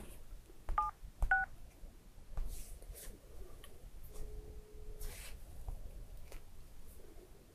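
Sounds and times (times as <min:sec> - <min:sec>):
faint noise inside a car: 0:00.0 - 0:07.5
phone keypad dialing beeps inside a car: 0:00.8 - 0:01.5
steady lower phone tone: 0:00.8 - 0:01.5, 0:04.1 - 0:05.2.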